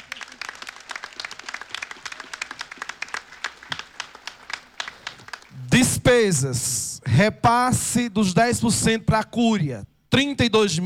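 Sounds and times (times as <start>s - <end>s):
crowd applauding at a church festival: 0.0s - 5.6s
speech: 6.1s - 10.8s.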